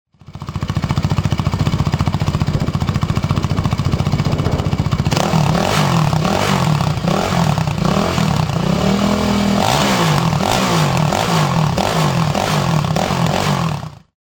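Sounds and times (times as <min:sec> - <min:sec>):
motorcycle exhaust: 0:00.1 - 0:14.1.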